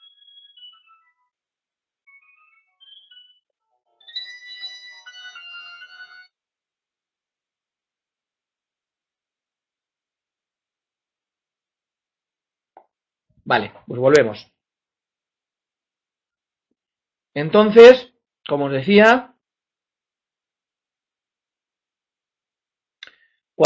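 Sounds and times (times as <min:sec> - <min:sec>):
mobile phone ringtone with electronic melody of beeping notes: 0:00.0 - 0:01.3, 0:02.1 - 0:06.3
speech: 0:12.8 - 0:14.5, 0:17.4 - 0:19.3.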